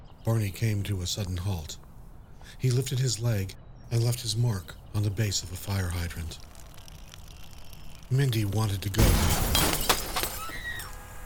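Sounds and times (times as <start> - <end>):
speech: 0.2 - 1.8, 2.5 - 6.6, 8.1 - 9.9
metal crunching in a car crash: 6.3 - 11.2
1990 VW Rabbit sideswiping a Ford sedan: 9.0 - 11.2
glass shattering in a car crash: 9.0 - 11.2.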